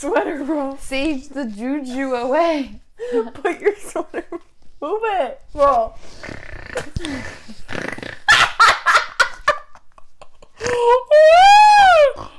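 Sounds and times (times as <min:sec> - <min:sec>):
speech: 0:00.0 - 0:08.1, 0:10.6 - 0:12.3
female pet dog snorting: 0:06.0 - 0:08.3.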